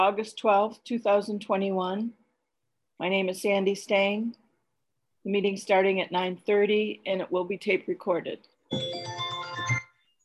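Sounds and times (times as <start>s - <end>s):
speech: 0.0s - 2.2s, 3.0s - 4.4s, 5.2s - 9.2s
mobile phone ringtone with a bright melodic electronic tune at a committee meeting: 8.7s - 10.2s.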